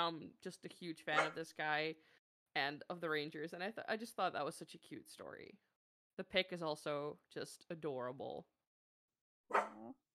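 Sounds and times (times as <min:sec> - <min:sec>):
speech: 0:00.0 - 0:08.5, 0:09.5 - 0:10.0
Shiba Inu dog yipping and whimpering: 0:09.5 - 0:09.9.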